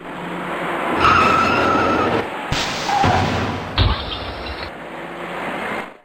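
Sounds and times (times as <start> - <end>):
broad engine and tire noise on a busy urban ring-road: 0.0 - 6.0
several cars skidding in a rear-end pileup on an urban ring-road: 0.2 - 5.9
cars crashing into one another in a rear-end pileup: 2.5 - 4.7.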